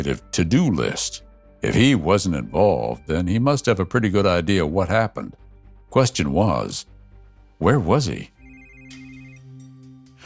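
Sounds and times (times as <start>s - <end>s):
speech: 0.0s - 6.9s, 7.6s - 8.3s
cell phone ringtone playing a repeating electronic melody: 8.4s - 9.8s.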